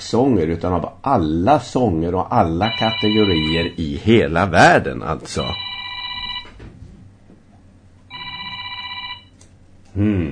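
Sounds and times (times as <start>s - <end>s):
speech: 0.0s - 5.7s, 10.0s - 10.3s
telephone ringing with electronic trill: 2.6s - 3.8s, 5.4s - 6.6s, 8.1s - 9.4s.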